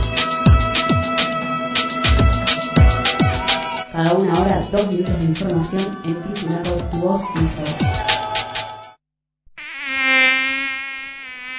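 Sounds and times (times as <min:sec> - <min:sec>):
dengue-carrying mosquito buzzing: 0:00.0 - 0:03.7, 0:09.5 - 0:11.5
speech: 0:04.0 - 0:08.1.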